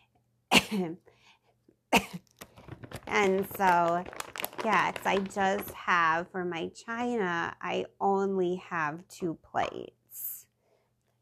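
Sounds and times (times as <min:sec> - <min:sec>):
sick person coughing harshly: 0:00.5 - 0:01.0, 0:01.9 - 0:02.3
speech: 0:00.7 - 0:01.2, 0:03.1 - 0:10.3
faint breathy sounds: 0:01.1 - 0:01.6, 0:10.5 - 0:11.2.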